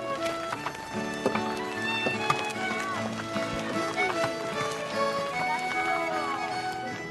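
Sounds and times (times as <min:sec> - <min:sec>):
horse hooves clip-clopping pulling a cart: 0:00.0 - 0:07.0
trio playing instruments aboard a cart: 0:01.9 - 0:07.0
voices: 0:02.4 - 0:07.0.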